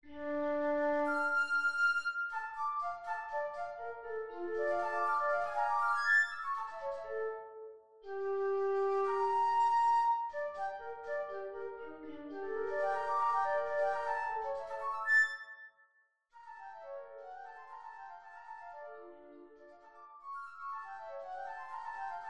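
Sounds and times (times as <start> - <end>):
flute track: 0.0 - 15.6, 16.4 - 22.2.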